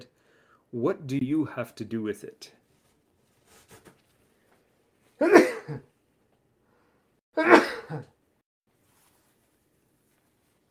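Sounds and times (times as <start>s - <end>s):
speech: 0.7s - 2.6s, 5.2s - 5.9s, 7.4s - 8.1s
person with allergies sneezing: 5.2s - 5.8s, 7.4s - 8.1s.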